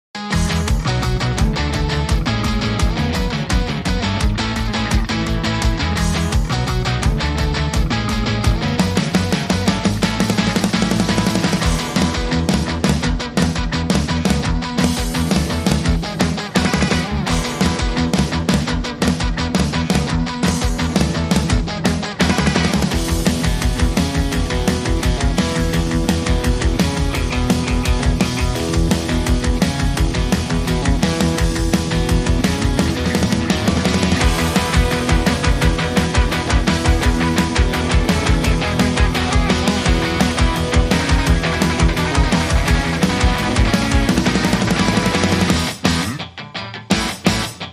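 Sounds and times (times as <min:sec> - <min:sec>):
guitar without phaser effect: 0:00.2 - 0:47.7.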